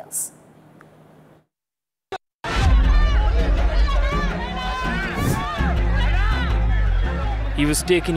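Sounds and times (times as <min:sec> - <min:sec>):
speech: 0:00.0 - 0:00.4, 0:07.6 - 0:08.1
large crowd of supporters cheering and shouting outside a police station: 0:02.4 - 0:08.1.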